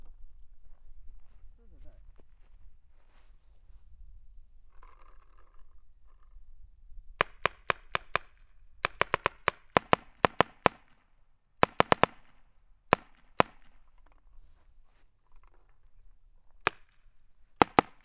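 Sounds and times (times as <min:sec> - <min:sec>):
long barrel paintball guns firing: 0:07.2 - 0:14.2, 0:16.5 - 0:18.0.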